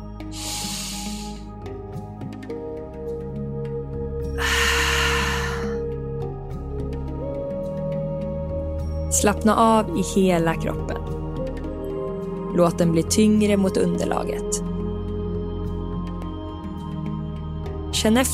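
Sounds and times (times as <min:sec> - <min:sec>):
soft steady music bed: 0:00.0 - 0:18.3
deep breaths in and out through the mouth: 0:00.3 - 0:01.6, 0:04.4 - 0:05.8
speech: 0:09.2 - 0:11.2, 0:12.6 - 0:14.7, 0:18.0 - 0:18.3.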